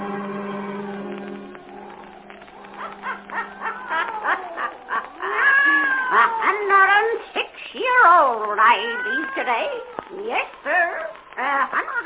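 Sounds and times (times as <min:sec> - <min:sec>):
black cat yowling and caterwauling: 0:01.6 - 0:12.0
laughter: 0:02.6 - 0:07.1, 0:11.4 - 0:12.0
speech: 0:08.8 - 0:10.8.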